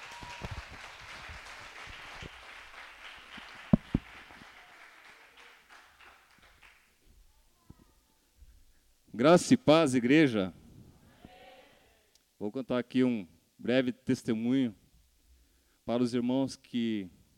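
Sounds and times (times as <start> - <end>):
church audience applauding: 0.0 - 7.0
speech: 9.2 - 10.6, 12.6 - 14.8, 15.9 - 17.2.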